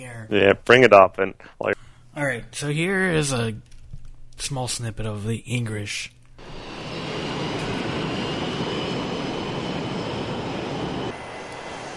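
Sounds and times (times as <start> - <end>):
speech: 0.0 - 3.7, 4.4 - 6.6
airport control tower engine roar and hum: 6.4 - 11.9.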